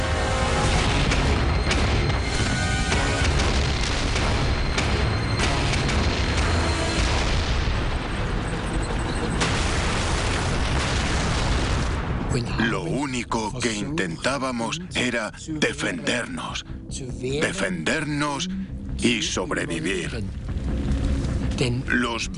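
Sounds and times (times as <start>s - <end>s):
huge explosions in battle: 0.2s - 13.5s
speech: 12.5s - 20.4s, 21.6s - 22.3s.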